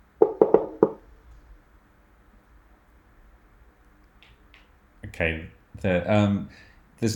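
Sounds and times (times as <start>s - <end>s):
knocking on a wooden door: 0.2s - 1.0s
speech: 5.2s - 7.1s.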